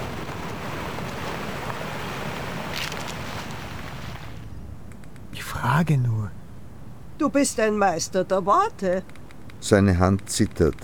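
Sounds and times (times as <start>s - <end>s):
leaves rustling in a gust of wind: 0.0s - 4.8s
strong wind blowing: 0.0s - 8.0s
speech: 5.7s - 6.4s, 7.2s - 10.8s.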